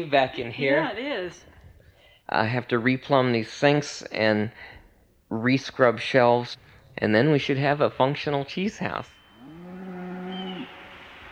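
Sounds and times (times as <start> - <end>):
speech: 0.0 - 1.6, 2.3 - 9.2
cow mooing outside a farm cheese house: 9.4 - 10.9.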